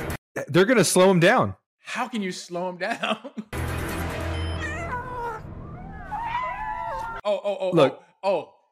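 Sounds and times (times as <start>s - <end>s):
speech: 0.5s - 3.6s, 7.3s - 8.5s
high-pitched kitten meowing: 4.5s - 5.4s.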